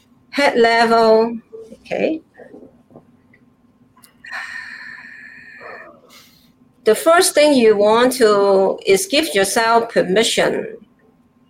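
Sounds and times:
speech: 0.4 - 2.3, 6.9 - 10.8
deep breath in and slow exhale: 4.2 - 6.6.

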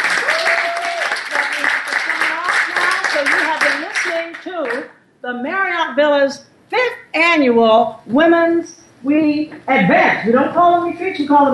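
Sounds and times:
audience applause and hand clapping at a women's empowerment summer gathering: 0.0 - 4.9
speech: 5.3 - 11.5.

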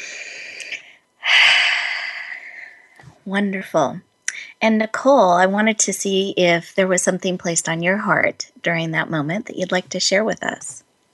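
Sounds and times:
group taking a collective breath: 0.0 - 3.1
speech: 3.2 - 10.8.

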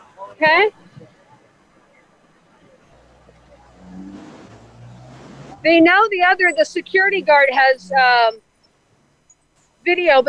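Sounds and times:
speech: 0.4 - 0.8, 5.6 - 8.4, 9.8 - 10.2
car engine idling and revving: 0.7 - 8.4.

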